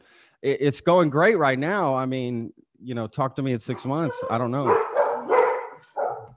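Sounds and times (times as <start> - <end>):
speech: 0.4 - 4.9
dog barking: 3.7 - 6.3.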